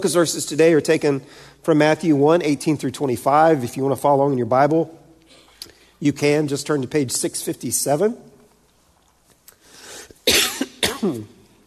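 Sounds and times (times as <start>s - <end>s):
speech: 0.0s - 5.0s, 6.0s - 8.3s, 11.0s - 11.3s
harsh coughs trailing into a rough voiced rasp: 5.3s - 5.7s, 10.2s - 11.4s.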